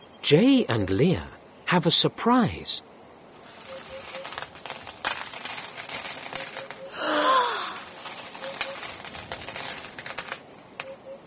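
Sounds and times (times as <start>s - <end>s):
speech: 0.2s - 2.9s
gold coins spilling and clattering out of an emptied well bucket: 3.4s - 11.0s.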